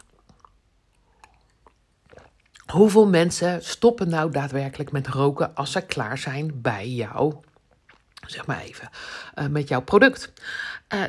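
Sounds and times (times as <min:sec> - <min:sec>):
small swallow: 0:00.0 - 0:02.6
person sipping water: 0:00.0 - 0:02.7, 0:07.4 - 0:08.3
speech: 0:02.7 - 0:07.5, 0:08.3 - 0:11.0.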